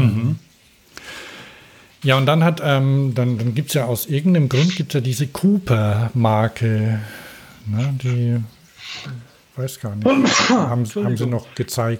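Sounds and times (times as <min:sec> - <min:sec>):
speech: 0:02.0 - 0:11.9
person sneezing: 0:04.5 - 0:04.8, 0:10.0 - 0:10.8.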